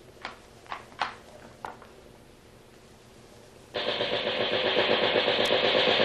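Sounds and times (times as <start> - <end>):
machine gun test-fired aboard a schooner: 3.8 - 6.0.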